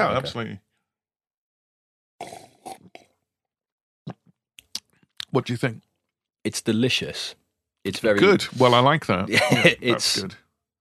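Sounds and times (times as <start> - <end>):
speech: 0.0 - 0.7, 5.3 - 10.4
slurping hot coffee made in a Chemex: 2.2 - 3.0
laughter: 8.2 - 10.3.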